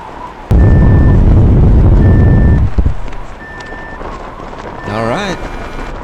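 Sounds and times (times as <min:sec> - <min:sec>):
loud roaring rumble: 0:00.5 - 0:03.5
phone app proximity alarm high-pitched electronic beeps: 0:00.5 - 0:04.0, 0:04.8 - 0:06.0.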